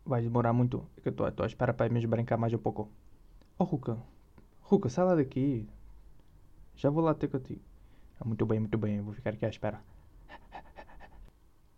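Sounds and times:
speech: 0.1s - 5.8s, 6.8s - 10.6s
dog panting while playing fetch with a ball: 10.2s - 11.3s.

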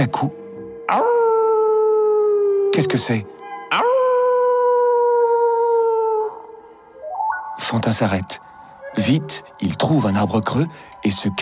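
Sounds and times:
speech: 0.0s - 1.3s, 2.8s - 4.0s, 7.7s - 11.4s
wolf howling at night in a forest: 0.9s - 6.9s.

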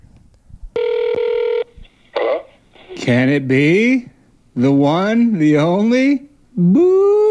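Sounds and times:
phone call ringing tone over the line: 0.8s - 1.7s
speech: 3.1s - 7.2s.

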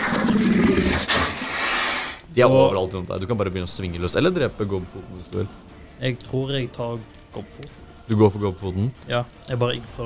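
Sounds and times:
bear roaring angrily: 0.0s - 2.2s
speech: 0.4s - 0.9s, 2.4s - 10.0s.

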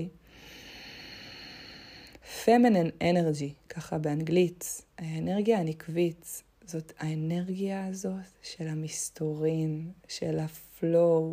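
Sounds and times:
woman drawing a long steady breath: 0.2s - 2.3s
speech: 2.3s - 11.3s.

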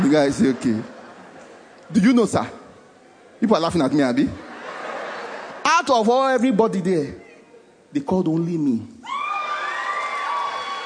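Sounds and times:
laughter: 0.0s - 2.6s, 4.1s - 5.8s
speech: 0.1s - 1.0s, 1.9s - 2.6s, 3.4s - 4.4s, 5.8s - 7.2s, 7.9s - 9.2s
crowd of many voices shouting and cheering: 9.0s - 10.8s
high-pitched whoops from the crowd: 9.0s - 10.8s.

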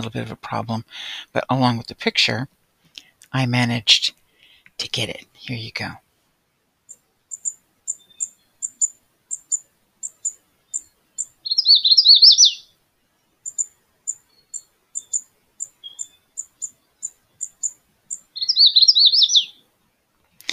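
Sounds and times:
speech: 0.0s - 2.6s, 3.3s - 4.2s, 4.8s - 6.0s
magnolia warbler chip notes: 6.9s - 12.6s, 13.4s - 19.5s.

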